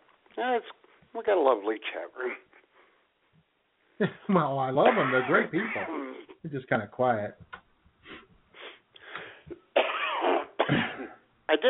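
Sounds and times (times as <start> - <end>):
speech: 0.4 - 2.5, 4.0 - 7.6, 11.5 - 11.6
raspy wheezing coughing fit: 4.8 - 6.3, 9.5 - 11.3.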